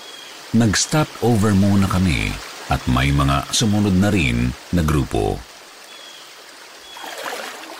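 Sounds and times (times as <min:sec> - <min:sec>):
small stream flowing: 0:00.0 - 0:07.7
speech: 0:00.5 - 0:05.5.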